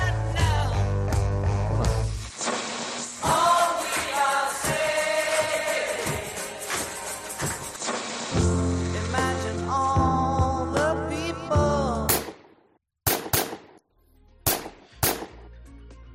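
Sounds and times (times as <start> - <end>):
music: 0.0 - 12.3, 13.8 - 16.1
revolver gunshots: 12.1 - 13.8, 14.5 - 15.4.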